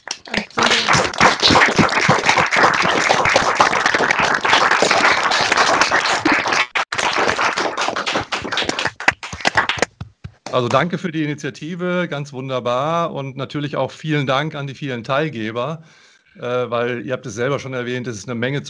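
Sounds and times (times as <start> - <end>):
group applause from participants over open microphones: 0.0 - 10.9
speech: 10.6 - 18.6.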